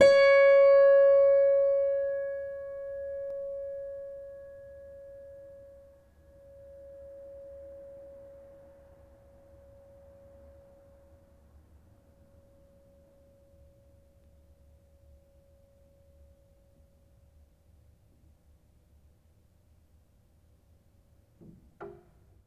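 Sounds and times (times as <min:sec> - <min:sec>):
plucked piano strings: 0:00.0 - 0:05.6.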